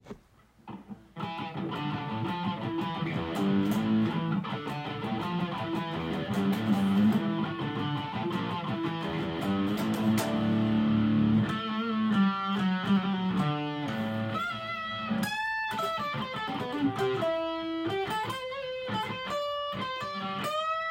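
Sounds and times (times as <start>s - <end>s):
heavy guitar: 0.7s - 20.9s.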